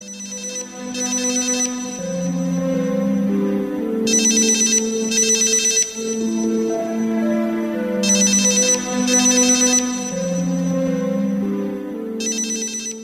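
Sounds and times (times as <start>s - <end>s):
sleepy alarm wake-up tone: 0.0s - 13.0s.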